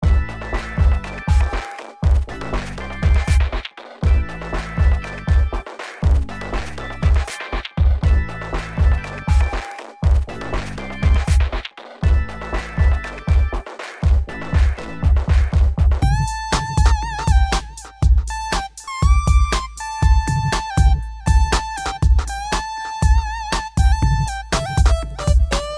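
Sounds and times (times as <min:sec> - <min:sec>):
drum loops: 0:00.0 - 0:25.7.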